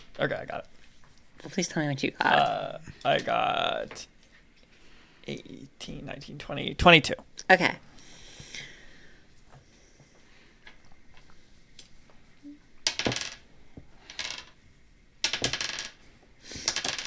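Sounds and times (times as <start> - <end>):
speech: 0.2 - 0.8, 1.4 - 4.1, 5.3 - 7.9
dice clattering onto a table during a tabletop role-playing game: 12.8 - 13.4, 14.0 - 14.6, 15.2 - 17.0.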